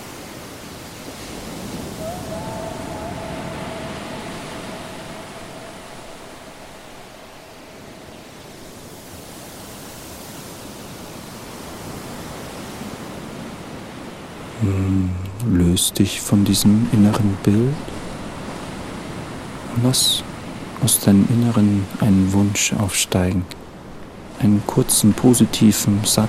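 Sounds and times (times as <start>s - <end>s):
broad wash of ocean surf: 0.0s - 26.2s
faint tonal hum: 2.0s - 9.0s
speech: 14.6s - 17.9s, 19.8s - 23.6s, 24.4s - 26.2s.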